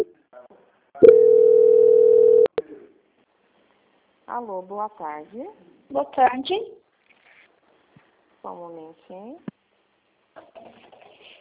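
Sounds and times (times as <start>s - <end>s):
telephone beep during call transfer: 1.0s - 2.5s
speech: 4.3s - 6.8s, 8.4s - 9.5s.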